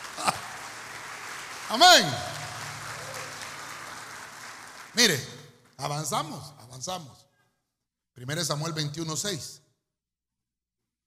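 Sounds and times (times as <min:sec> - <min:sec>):
laughter: 0:00.0 - 0:00.7
audience clapping hands: 0:00.0 - 0:06.4
speech: 0:01.7 - 0:02.3, 0:05.0 - 0:07.2, 0:08.2 - 0:09.6.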